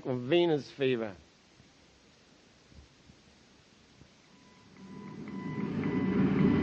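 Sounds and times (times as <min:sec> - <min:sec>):
speech: 0:00.0 - 0:01.3
thin steady tone: 0:04.2 - 0:06.5
quick regular series of electronic beeps: 0:04.3 - 0:06.3
stimutron treatment machine humming with a low rumble: 0:04.3 - 0:06.6.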